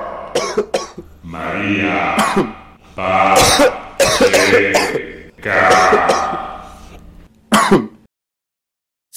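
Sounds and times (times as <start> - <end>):
woman coughing: 0.3 - 1.1, 2.2 - 2.6, 3.4 - 6.5, 7.5 - 8.0
speech: 0.4 - 6.4.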